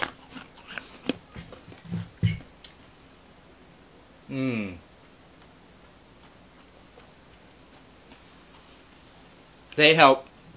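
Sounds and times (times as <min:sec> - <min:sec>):
crunchy chewing of hard papaya tablets: 0:00.0 - 0:01.8, 0:05.3 - 0:09.0
person humming: 0:04.3 - 0:04.8
speech: 0:04.3 - 0:04.8, 0:09.8 - 0:10.3.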